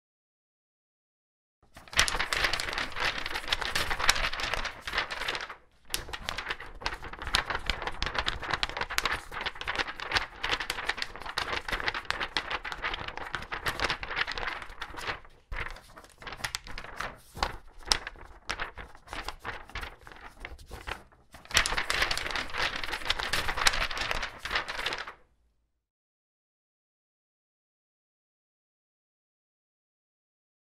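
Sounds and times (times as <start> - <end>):
book pages flipping in wind: 1.8 - 25.2.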